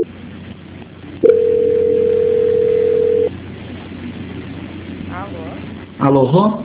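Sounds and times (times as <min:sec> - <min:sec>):
telephone line tone during a call transfer: 0:01.2 - 0:03.3.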